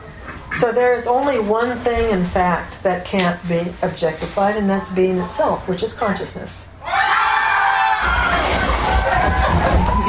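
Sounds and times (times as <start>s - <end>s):
speech: 0.6s - 6.7s
crowd cheering and shouting outdoors: 6.8s - 10.0s.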